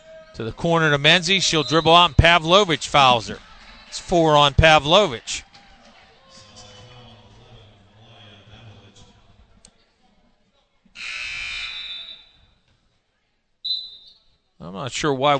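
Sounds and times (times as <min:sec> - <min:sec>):
crowd noise in a big gym: 0:00.0 - 0:15.3
speech: 0:00.4 - 0:05.5, 0:14.8 - 0:15.3
loud arena substitution buzzer: 0:11.0 - 0:12.4.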